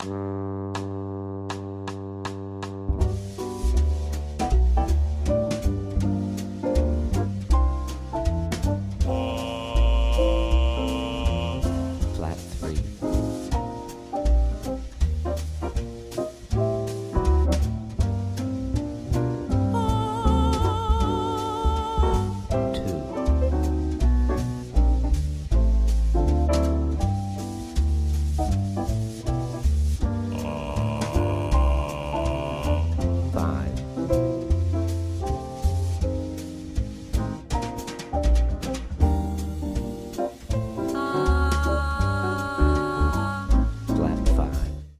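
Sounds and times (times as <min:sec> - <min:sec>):
jazz standard for ear training: 0:00.0 - 0:44.9.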